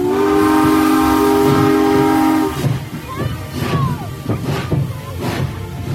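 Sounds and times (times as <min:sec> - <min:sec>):
steam train whistle blowing: 0:00.0 - 0:02.8
running steam train chugging and hissing: 0:00.0 - 0:05.9.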